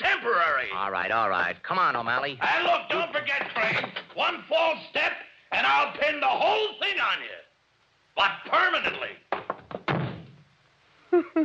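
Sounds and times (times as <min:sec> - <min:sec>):
speech: 0:00.7 - 0:07.5, 0:08.2 - 0:09.2, 0:11.1 - 0:11.4
door slamming shut: 0:09.7 - 0:10.4.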